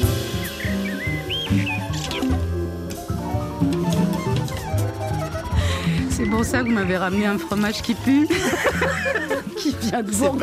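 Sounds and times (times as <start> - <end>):
dense instrumental music: 0.0 - 10.4
blackbird singing whistled phrases: 0.4 - 2.3
speech: 6.2 - 10.4
laughter: 8.2 - 10.4.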